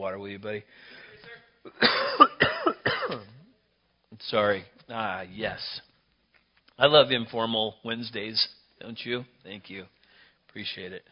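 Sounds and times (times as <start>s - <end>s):
speech: 0.0s - 2.4s, 3.1s - 3.4s, 4.1s - 5.9s, 6.8s - 11.1s
faint breath: 0.7s - 1.4s, 10.0s - 10.5s
harsh throaty coughs: 1.7s - 3.5s.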